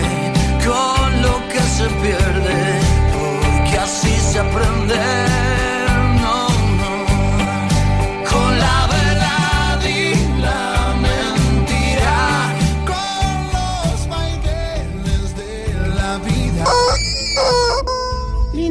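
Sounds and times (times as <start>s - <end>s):
loud continuous music: 0.0s - 18.7s
rooster crowing: 16.6s - 18.2s.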